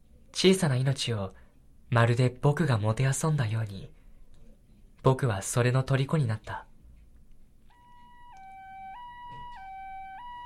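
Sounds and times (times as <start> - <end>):
speech: 0.4 - 4.0, 5.0 - 6.7
distant two-tone siren: 7.7 - 10.4.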